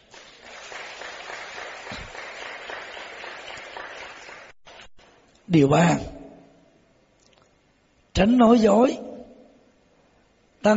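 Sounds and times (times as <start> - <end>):
audience applause at a talk on love and marriage: 0.0 - 4.9
speech: 5.5 - 6.2, 8.2 - 9.1.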